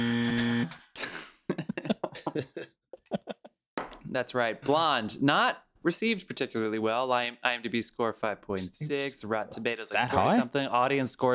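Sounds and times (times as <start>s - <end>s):
game show buzzer: 0.0s - 0.7s
laughter: 1.0s - 3.5s, 10.0s - 10.5s
speech: 4.2s - 11.3s.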